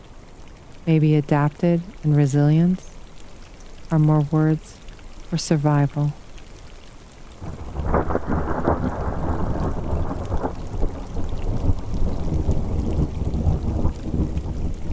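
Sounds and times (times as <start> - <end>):
heavy rain: 0.0 - 14.9
speech: 0.8 - 2.9, 3.9 - 6.2
deep continuous thunder rumble: 7.4 - 14.9
gusting wind: 7.4 - 14.9.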